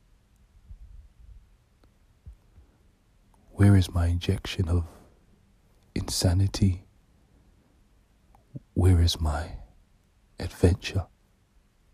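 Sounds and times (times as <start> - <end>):
faint steady hum: 0.0 - 11.9
slow heartbeat: 0.6 - 1.5, 2.2 - 2.6
speech: 3.6 - 5.0, 6.0 - 6.8, 8.8 - 9.6, 10.4 - 11.1.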